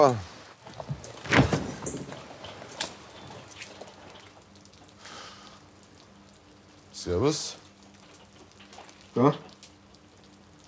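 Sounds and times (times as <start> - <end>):
speech: 0.0 - 0.3, 7.0 - 7.6, 9.2 - 9.5
door rattle and scrape: 0.9 - 2.8.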